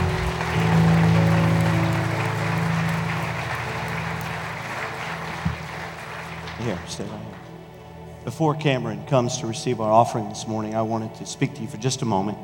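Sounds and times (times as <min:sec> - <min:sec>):
sustained low keyboard or organ tones: 0:00.0 - 0:06.0
crowd clapping: 0:00.0 - 0:07.8
speech: 0:06.6 - 0:07.3, 0:08.2 - 0:12.4.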